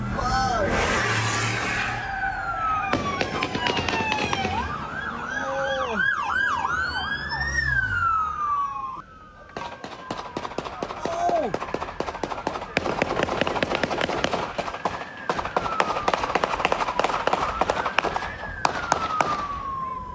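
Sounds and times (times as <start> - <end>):
police siren: 0.0 - 20.1
burst of gunshots in a shootout between police and a suspect: 2.8 - 4.8, 9.6 - 19.7.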